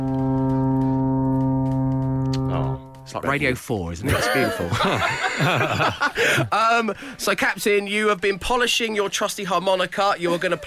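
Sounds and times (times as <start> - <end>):
ship's foghorn long low blast: 0.0 - 3.1
speech: 3.1 - 10.6
laughter: 4.0 - 6.6, 10.2 - 10.6.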